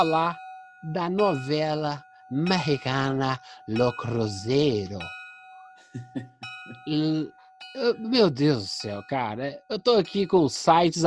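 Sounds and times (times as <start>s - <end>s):
speech: 0.0s - 5.2s, 6.0s - 11.0s
bell ringing with a sustained metallic tone: 0.0s - 11.0s.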